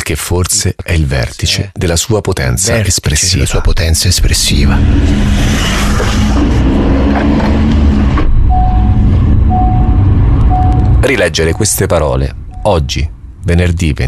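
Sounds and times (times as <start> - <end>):
speech: 0.1 - 7.8, 11.0 - 14.0
car driving through city traffic: 4.2 - 14.0.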